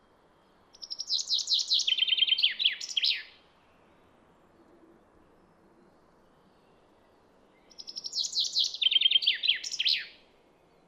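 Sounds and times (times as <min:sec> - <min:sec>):
Common chaffinch Fringilla coelebs song trill with terminal flourish: 0:00.4 - 0:04.0, 0:05.8 - 0:10.8.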